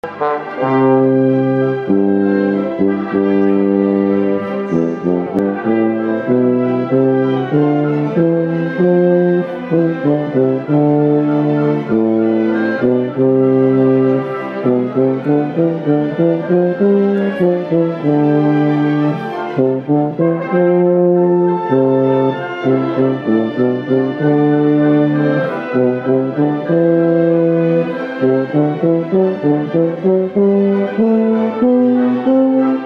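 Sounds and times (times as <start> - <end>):
Wagner tuba: 0.0 - 32.8.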